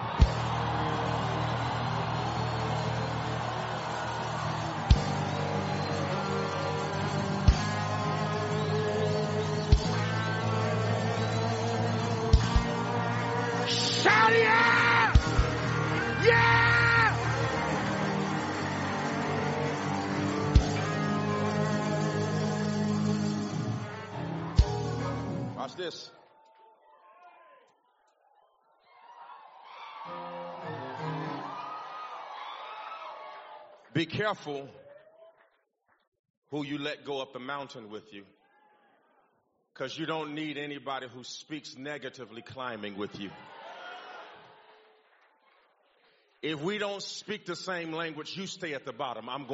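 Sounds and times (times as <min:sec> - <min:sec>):
large crowd yelling, screaming and whooping: 0:00.0 - 0:33.9, 0:43.2 - 0:44.7
speech: 0:34.0 - 0:34.8, 0:36.5 - 0:38.4, 0:39.8 - 0:43.5, 0:46.4 - 0:49.5.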